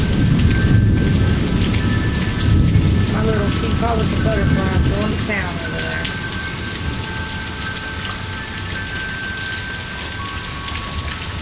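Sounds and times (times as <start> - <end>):
deep continuous rumble of thunder: 0.0 - 7.7
steady heavy rain in a sudden thunderstorm: 0.0 - 11.4.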